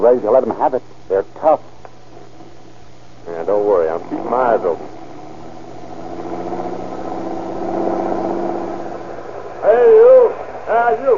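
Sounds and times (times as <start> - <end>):
speech: 0.0 - 1.7, 3.3 - 5.0, 10.7 - 11.1
car engine rumbling and idling on an ocean highway: 3.5 - 11.0.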